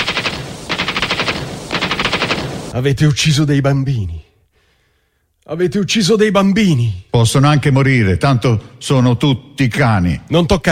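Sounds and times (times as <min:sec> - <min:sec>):
automatic gunfire: 0:00.0 - 0:02.8
speech: 0:02.8 - 0:04.2, 0:05.5 - 0:10.7.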